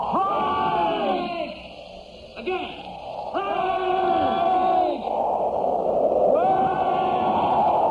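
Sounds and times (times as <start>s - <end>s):
several men shouting in unison: 0.0s - 1.6s, 2.4s - 5.1s, 6.3s - 7.8s.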